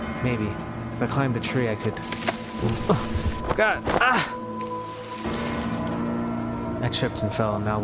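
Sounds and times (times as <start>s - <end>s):
speech: 0.2s - 4.4s, 5.2s - 5.4s, 6.8s - 7.8s
heavy rain falling on foliage and leaves: 2.2s - 5.9s.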